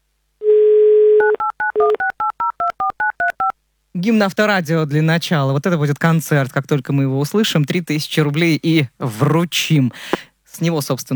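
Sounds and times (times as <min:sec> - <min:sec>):
telephone dial tone: 0:00.4 - 0:02.1
speech: 0:04.0 - 0:11.1.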